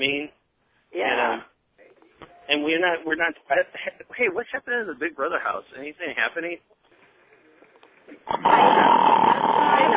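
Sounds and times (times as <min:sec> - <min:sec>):
speech: 0:02.7 - 0:06.8, 0:08.3 - 0:08.6
loud harsh snoring: 0:08.3 - 0:09.9.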